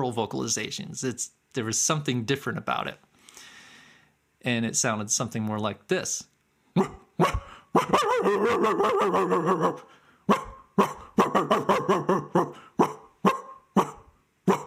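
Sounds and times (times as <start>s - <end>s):
speech: 0.0s - 3.1s, 4.4s - 12.2s
dog alarm barking signalling a lion: 6.8s - 14.6s.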